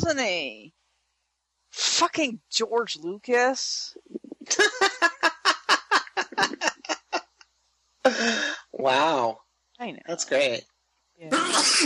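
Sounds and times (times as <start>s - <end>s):
speech: 0.0s - 0.8s, 1.7s - 5.2s, 8.1s - 11.8s
laughter: 4.4s - 7.2s, 8.1s - 9.0s
single loud sneeze: 8.1s - 8.7s, 11.3s - 11.8s.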